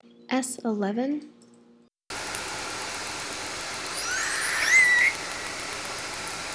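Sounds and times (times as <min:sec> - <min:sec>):
Southern Resident killer whale sounds: 0:02.6 - 0:06.5.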